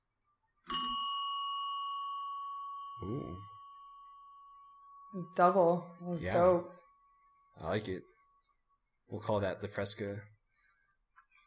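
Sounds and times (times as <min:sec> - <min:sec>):
finger cymbals striking a bell: 0:00.6 - 0:06.7
speech: 0:03.0 - 0:03.5, 0:05.1 - 0:06.8, 0:07.6 - 0:08.1, 0:09.1 - 0:10.3.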